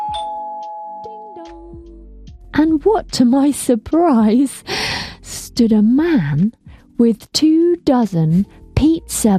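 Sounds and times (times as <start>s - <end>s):
doorbell chiming: 0.0s - 1.5s
speech: 2.6s - 4.8s, 5.6s - 9.3s.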